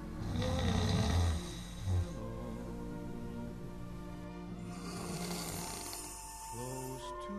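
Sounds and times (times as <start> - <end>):
sleeping person snoring: 0.2 - 2.9, 4.6 - 7.2.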